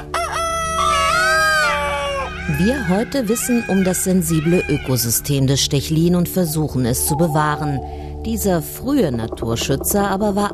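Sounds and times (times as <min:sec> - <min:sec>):
rooster crowing: 0:00.0 - 0:05.0
speech: 0:02.6 - 0:10.5.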